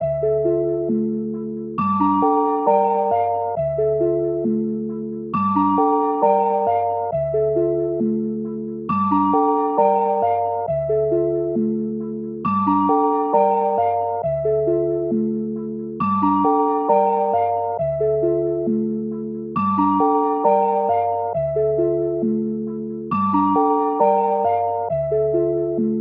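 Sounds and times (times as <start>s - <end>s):
D minor keys melody: 0.0s - 25.9s.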